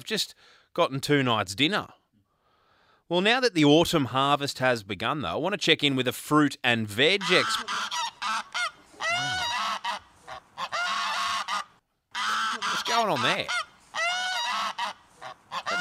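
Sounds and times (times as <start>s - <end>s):
speech: 0.0s - 2.0s, 3.1s - 8.0s, 13.0s - 13.6s
geese honking: 7.1s - 15.7s.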